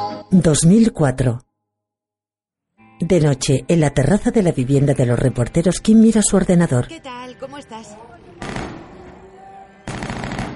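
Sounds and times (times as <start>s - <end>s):
speech: 0.2s - 1.5s, 3.0s - 8.6s
automatic gunfire from a nearby wedding celebration: 8.4s - 8.8s, 9.9s - 10.5s.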